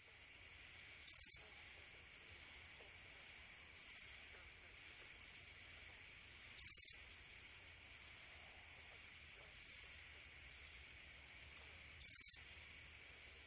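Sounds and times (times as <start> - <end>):
steady high insect hum: 0.0 - 13.4
Oblong-winged katydid buzzy raspy bursts: 1.1 - 1.4.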